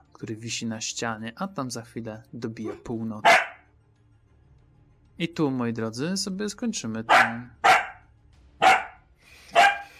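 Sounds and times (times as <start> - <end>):
speech: 0.2 - 3.5, 5.2 - 7.6
small dog barking: 2.7 - 3.6, 7.1 - 9.9.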